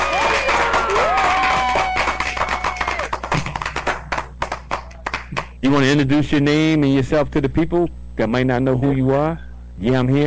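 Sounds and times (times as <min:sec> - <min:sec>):
crowd cheering and whooping: 0:00.0 - 0:03.4
hand clapping for a caller on a radio show: 0:00.0 - 0:05.6
speech: 0:05.6 - 0:10.2.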